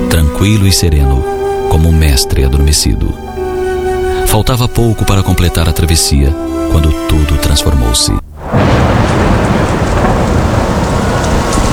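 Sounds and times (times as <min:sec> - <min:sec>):
speech: 0:00.4 - 0:03.2, 0:04.3 - 0:08.2
deep rolling rumble of thunder: 0:08.3 - 0:11.7
heavy rain pouring in a thunderstorm over the Lake of Gennesaret: 0:08.3 - 0:11.7.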